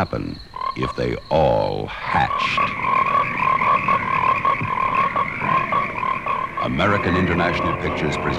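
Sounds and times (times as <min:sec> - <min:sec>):
speech: 0:00.0 - 0:03.4, 0:06.6 - 0:08.3
frogs croaking: 0:00.0 - 0:08.3.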